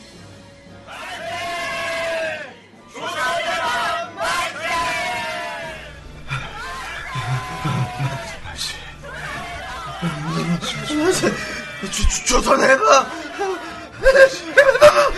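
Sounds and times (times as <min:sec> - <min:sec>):
crowd shouting hurrah cheers: 0:00.9 - 0:15.1
low rumble of noise: 0:05.6 - 0:12.2
laughter: 0:05.6 - 0:15.1
speech: 0:10.0 - 0:15.1.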